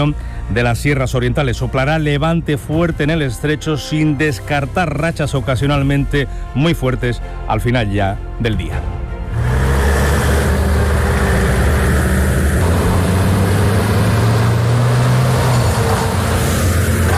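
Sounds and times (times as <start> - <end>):
speech: 0.0 - 9.0
military emergency-unit truck engines rumbling leaving a base at dawn: 9.1 - 17.1.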